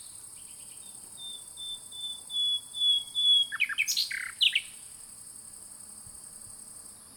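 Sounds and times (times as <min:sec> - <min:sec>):
common nightingale Luscinia megarhynchos singing whistles and chirps: 0:00.0 - 0:04.9.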